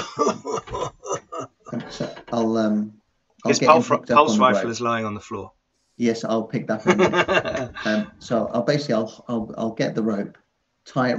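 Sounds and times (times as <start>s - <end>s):
speech: 0.0s - 0.4s, 2.4s - 11.1s
laughter: 0.0s - 2.2s, 3.5s - 4.9s, 6.7s - 8.3s
person acting out a character's raspy coughing fit: 0.0s - 2.2s.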